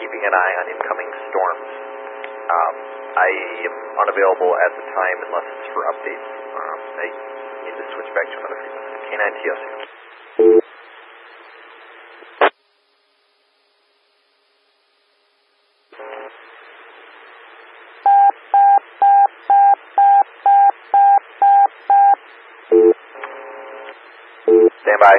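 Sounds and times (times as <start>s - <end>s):
hissy two-way radio static: 0.0s - 9.9s, 16.0s - 16.5s, 23.1s - 24.0s, 24.6s - 25.1s
speech: 0.2s - 1.8s, 2.5s - 10.6s
pager alert tones over a two-way radio: 18.0s - 23.0s.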